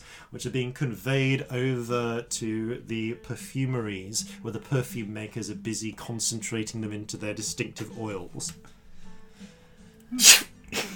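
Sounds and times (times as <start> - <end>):
speech: 0.3 - 8.8, 10.1 - 10.5
woman sneezing: 10.1 - 10.9.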